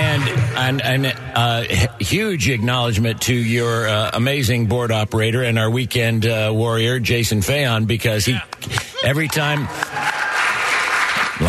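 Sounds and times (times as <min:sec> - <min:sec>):
studio audience round of applause: 0:00.0 - 0:01.0, 0:08.5 - 0:11.4
speech: 0:00.6 - 0:10.1.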